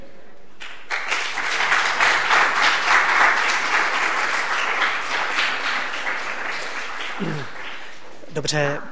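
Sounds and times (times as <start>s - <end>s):
large audience applause: 0.6s - 8.3s
speech: 8.4s - 8.9s.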